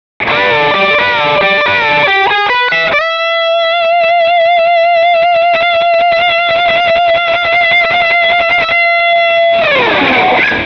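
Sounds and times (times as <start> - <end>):
sustained rock guitar with pedals: 0.2 - 10.6.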